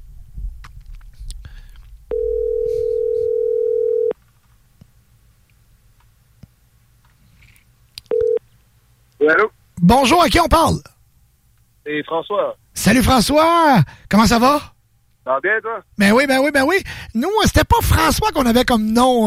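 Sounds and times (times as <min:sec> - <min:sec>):
soft rumble: 0:00.0 - 0:03.0
telephone line tone as a phone call is placed: 0:02.1 - 0:04.2, 0:08.1 - 0:08.4
speech: 0:09.3 - 0:10.9, 0:11.9 - 0:19.2.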